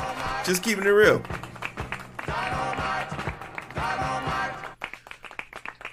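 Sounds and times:
hands clapping: 0:00.0 - 0:05.9
speech: 0:00.4 - 0:01.4.

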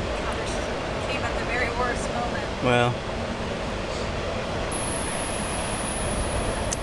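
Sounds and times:
train wheels rolling past: 0:00.0 - 0:06.7
speech: 0:02.6 - 0:03.1
faint high-pitched squeal of a passing train: 0:04.7 - 0:06.8.

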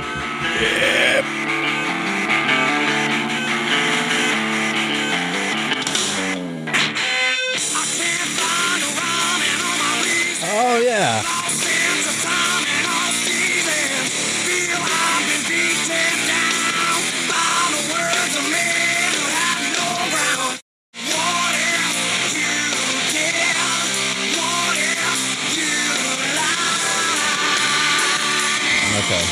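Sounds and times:
hard-hitting rock song from a movie soundtrack: 0:00.0 - 0:29.2
speech: 0:00.6 - 0:01.0.

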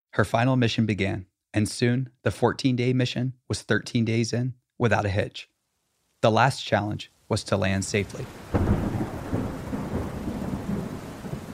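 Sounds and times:
speech: 0:00.2 - 0:05.5, 0:06.2 - 0:08.6
constant hiss of heavy rain: 0:06.2 - 0:11.5
deep rolling thunder: 0:08.2 - 0:11.5.

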